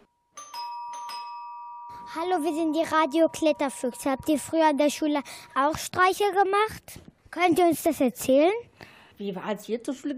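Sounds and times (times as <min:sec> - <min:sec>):
doorbell ringing at the front door of a house: 0:00.0 - 0:04.6
speech: 0:02.1 - 0:10.1.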